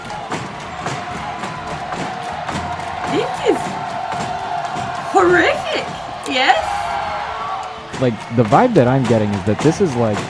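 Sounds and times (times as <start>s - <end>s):
large crowd roaring and cheering around a big ring: 0.0s - 10.2s
speech: 5.2s - 6.8s, 8.0s - 10.2s
sharp rhythmic impacts: 6.2s - 7.0s.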